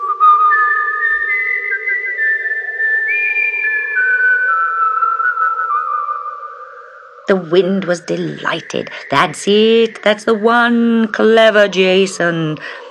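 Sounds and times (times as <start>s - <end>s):
person whistling a slow steady tune: 0.0s - 6.3s
soft breathy hum: 6.4s - 9.9s, 11.8s - 12.8s
speech: 7.3s - 12.8s.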